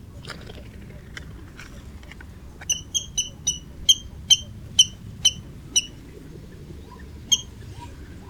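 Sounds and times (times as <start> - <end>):
water rail calling: 2.0 - 6.1, 6.9 - 7.8.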